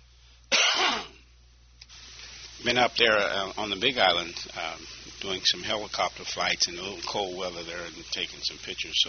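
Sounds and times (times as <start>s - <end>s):
harsh throat clearing after catching a slight chill: 0.5s - 1.2s
speech: 2.6s - 9.0s.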